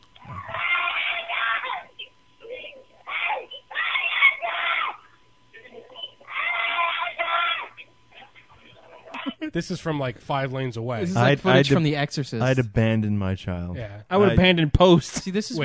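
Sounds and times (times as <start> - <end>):
child screaming and wailing in a store: 0.3 - 1.9, 3.1 - 5.0, 6.2 - 7.8
speech: 9.5 - 15.6.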